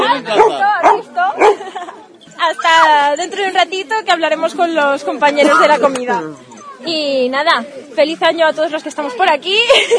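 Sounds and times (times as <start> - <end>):
dogs barking and yowling: 0.0 - 3.5
laughter: 1.4 - 2.2, 9.5 - 9.9
speech: 3.2 - 9.9.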